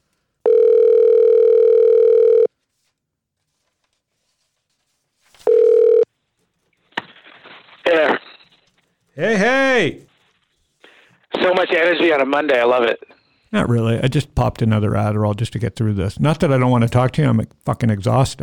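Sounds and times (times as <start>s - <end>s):
telephone ringback tone through the line: 0.4s - 2.5s, 5.4s - 6.1s
speech: 9.2s - 10.0s, 11.4s - 18.4s.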